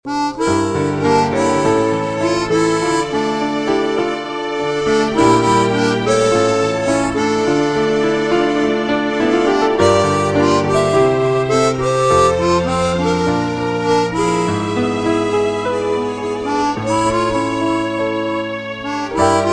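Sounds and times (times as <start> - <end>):
sad melody ringtone: 0.3 - 19.5.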